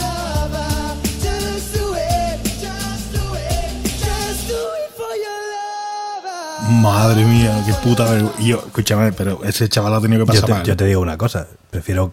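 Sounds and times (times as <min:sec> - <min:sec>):
male singer belting with voice breaking on a high note: 0:00.0 - 0:08.7
speech: 0:06.7 - 0:12.1.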